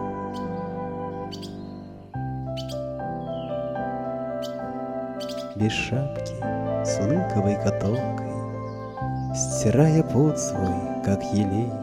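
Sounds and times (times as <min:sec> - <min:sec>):
sustained chord-like musical tones: 0:00.0 - 0:11.8
bird chirps: 0:00.2 - 0:03.6, 0:04.4 - 0:04.6, 0:05.2 - 0:05.6, 0:07.8 - 0:09.8
speech: 0:05.6 - 0:08.3, 0:09.3 - 0:11.8.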